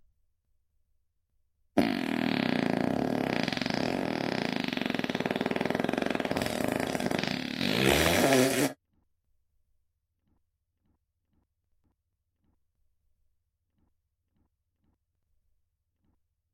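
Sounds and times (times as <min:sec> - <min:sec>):
long rasping fart: 0:01.8 - 0:08.8.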